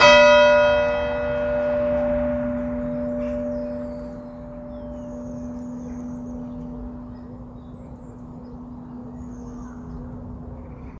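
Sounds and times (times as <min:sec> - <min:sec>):
bells ringing: 0:00.0 - 0:10.4.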